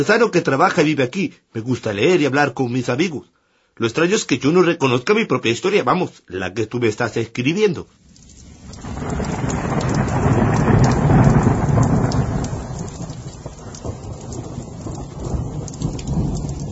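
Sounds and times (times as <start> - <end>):
speech: 0.0 - 8.0
heavy rain pouring down steadily: 7.9 - 16.7
low rumble of thunder: 8.0 - 16.7.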